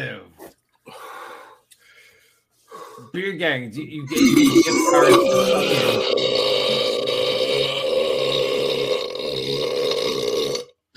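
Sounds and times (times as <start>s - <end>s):
speech: 3.1s - 6.5s
long loud deep gravelly burp: 4.1s - 10.8s.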